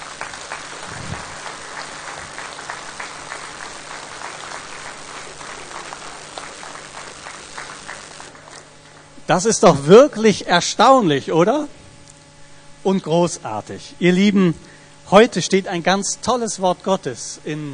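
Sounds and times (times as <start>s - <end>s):
audience applause: 0.0s - 8.7s
speech: 9.3s - 11.8s, 12.8s - 17.7s.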